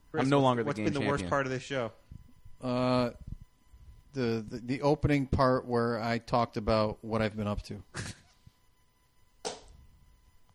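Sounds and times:
speech: 0.1 - 3.3, 4.1 - 8.2
hand hitting a clipboard: 9.4 - 9.8.

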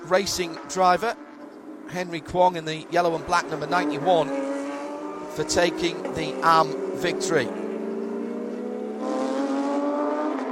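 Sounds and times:
race car engine humming rolling into the pit lane at low speed: 0.0 - 10.5
speech: 0.1 - 1.3, 1.9 - 4.6, 5.3 - 7.6.

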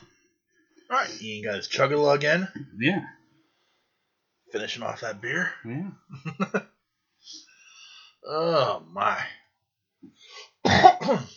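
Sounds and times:
speech: 0.9 - 3.2, 4.5 - 7.4, 8.2 - 9.4, 10.0 - 11.3
laughter: 4.6 - 6.6
throat clearing: 10.4 - 11.3
person coughing: 10.6 - 11.3.

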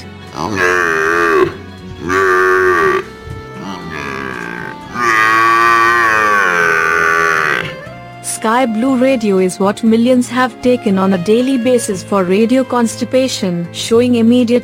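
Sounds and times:
water buffalo bellowing: 0.3 - 7.9
speech: 0.4 - 0.7, 8.5 - 14.6.

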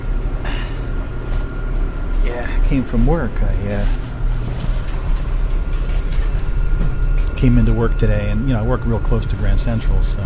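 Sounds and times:
moving commuter train interior rumble: 0.0 - 10.2
speech: 2.7 - 4.1, 7.4 - 10.2
faint high-pitched tones from the train cars: 4.9 - 10.2.

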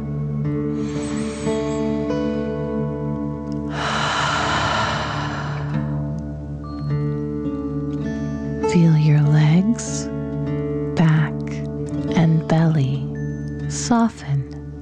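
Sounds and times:
steady soft musical drone: 0.0 - 14.8
slow airy deep breath in: 0.7 - 2.2, 3.7 - 6.1
forceful rushing exhale: 0.8 - 2.0, 3.7 - 6.0.

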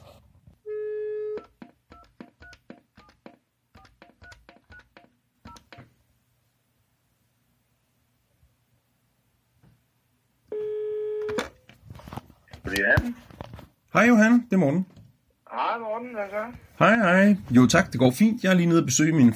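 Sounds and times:
steady telephone line tone on an old landline phone: 0.7 - 2.1, 10.5 - 11.6
keypad dialing beeps on an old landline phone: 1.2 - 5.8
speech: 12.7 - 13.3, 14.0 - 14.9, 16.0 - 19.3.

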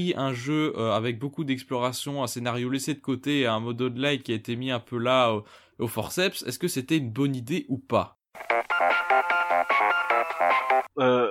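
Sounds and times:
speech: 0.0 - 9.0, 11.0 - 11.2
telephone ringtone of bright electronic tones: 8.4 - 10.9.

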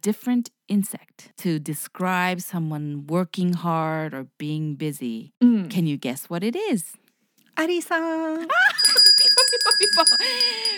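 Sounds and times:
speech: 0.0 - 7.0, 7.6 - 10.7
quiz correct-answer chime: 8.9 - 10.7.

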